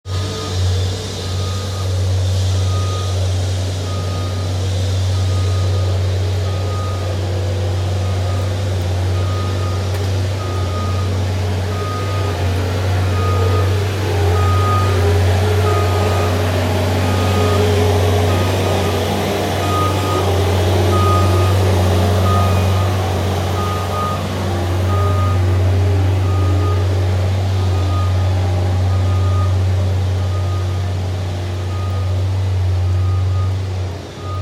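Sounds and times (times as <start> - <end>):
scissor lift: 0.1 - 34.3.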